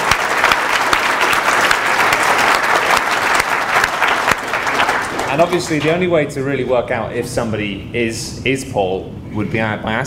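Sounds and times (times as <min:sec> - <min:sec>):
room full of people applauding volunteers: 0:00.0 - 0:06.0
speech: 0:05.4 - 0:10.0.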